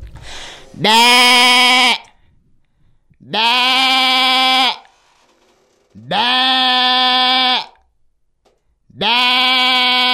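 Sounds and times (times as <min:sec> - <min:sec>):
human voice imitating a sheep bleating: 0:00.8 - 0:02.1, 0:03.2 - 0:04.9, 0:06.0 - 0:07.8, 0:08.9 - 0:10.1.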